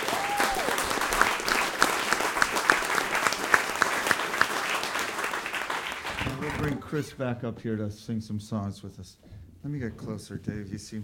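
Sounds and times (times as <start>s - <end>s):
audience applause: 0.0s - 7.0s
speech: 6.9s - 11.0s.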